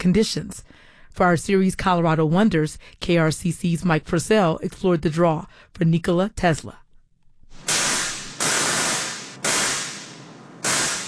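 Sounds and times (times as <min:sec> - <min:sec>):
speech: 0:00.0 - 0:06.8
large replica Tesla coil discharging above a brewery production floor: 0:07.6 - 0:11.0.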